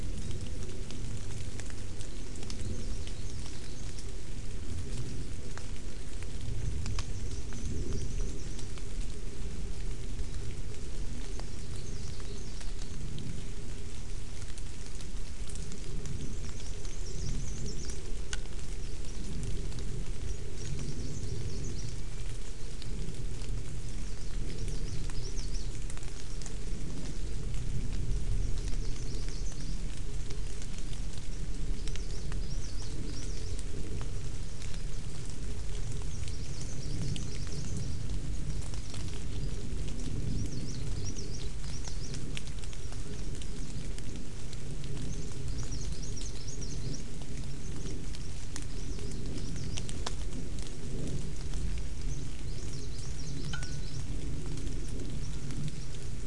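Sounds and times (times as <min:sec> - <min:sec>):
birds: 0:00.0 - 0:56.2
rain: 0:00.0 - 0:56.2.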